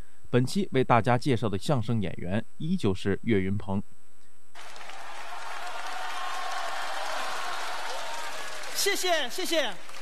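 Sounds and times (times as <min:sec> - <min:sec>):
speech: 0:00.3 - 0:04.0, 0:08.8 - 0:10.0
large audience applauding: 0:04.6 - 0:10.0.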